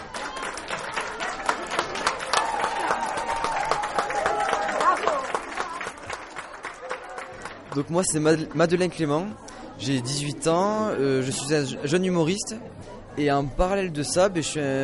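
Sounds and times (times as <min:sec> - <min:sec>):
crowd clapping: 0:00.0 - 0:08.9
speech: 0:07.8 - 0:14.8.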